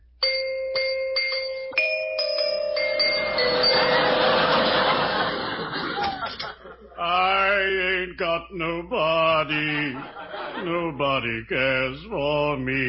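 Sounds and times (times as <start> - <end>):
doorbell chiming: 0.2 - 5.5
laughter: 3.3 - 7.5, 9.0 - 11.1
speech: 8.5 - 12.8.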